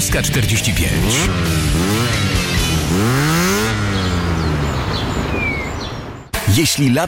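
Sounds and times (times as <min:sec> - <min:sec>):
speech: 0:00.0 - 0:01.8, 0:06.6 - 0:07.0
motorcycle engine revving: 0:00.5 - 0:06.4
faint chirps: 0:03.5 - 0:06.3.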